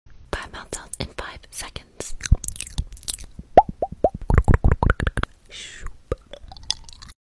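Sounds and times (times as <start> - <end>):
ASMR mouth sounds: 2.0 - 7.1.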